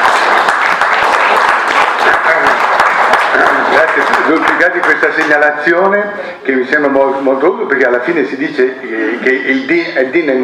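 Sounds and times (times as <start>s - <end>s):
audience applause after a talk on the common good and faith: 0.0s - 5.4s
speech: 3.7s - 10.4s.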